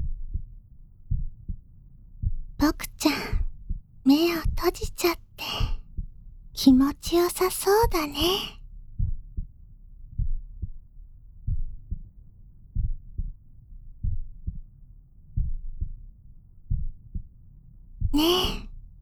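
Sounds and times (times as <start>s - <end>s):
heartbeat: 0.0s - 14.7s, 15.3s - 17.3s
speech: 2.6s - 3.4s, 4.1s - 5.8s, 6.6s - 8.6s, 18.2s - 18.5s.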